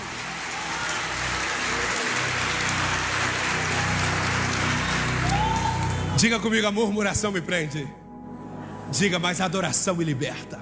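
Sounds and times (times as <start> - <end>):
audience at a worship service applauding: 0.0 - 6.4
speech: 6.2 - 8.0, 8.9 - 10.5.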